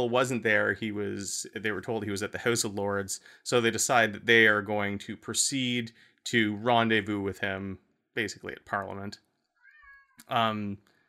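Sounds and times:
speech: 0:00.0 - 0:09.3, 0:10.2 - 0:10.9
cat meowing loudly: 0:09.6 - 0:10.3.

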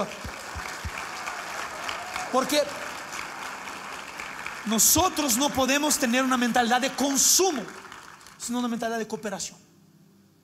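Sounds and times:
speech: 0:00.0 - 0:00.3, 0:02.3 - 0:02.8, 0:04.6 - 0:07.8, 0:08.4 - 0:09.6
audience applause: 0:00.0 - 0:09.1.

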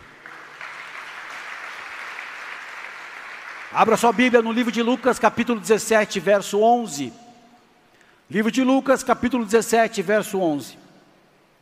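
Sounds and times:
crowd applauding: 0:00.0 - 0:05.2
speech: 0:03.7 - 0:07.2, 0:08.3 - 0:10.8.

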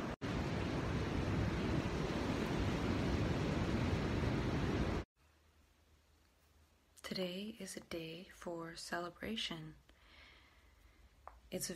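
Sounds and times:
ocean surf breaking on a shore: 0:00.0 - 0:05.1
speech: 0:07.2 - 0:09.8, 0:11.5 - 0:11.7.

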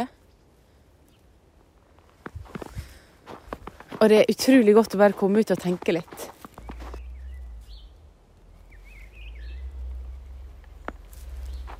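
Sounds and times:
steady low rumble of wind or traffic: 0:00.0 - 0:11.7
soft knocks or footsteps: 0:01.9 - 0:07.8, 0:10.4 - 0:11.7
speech: 0:04.0 - 0:06.4
birds singing outdoors on Valderøya: 0:05.5 - 0:11.7.

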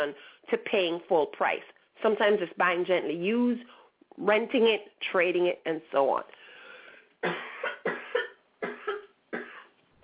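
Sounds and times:
speech: 0:00.0 - 0:06.4, 0:07.2 - 0:08.0
person coughing: 0:07.2 - 0:09.7.

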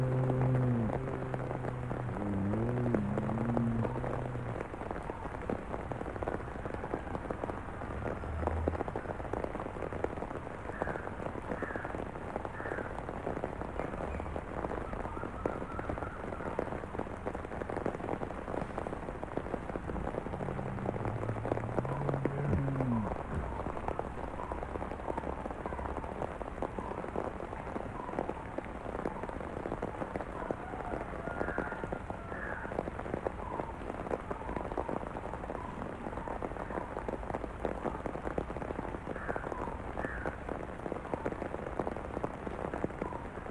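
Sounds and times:
bears grunting and growling: 0:00.0 - 0:04.7, 0:19.9 - 0:23.5
steady dense rain pattering on a surface: 0:00.0 - 0:43.4.

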